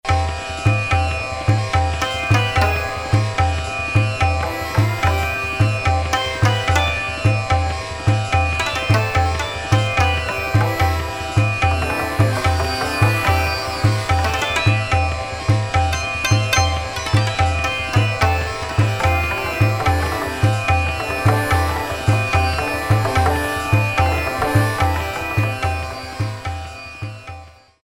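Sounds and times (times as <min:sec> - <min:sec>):
Indian instrument rhythm on a Korg DSS-1 sampler: 0:00.0 - 0:27.8.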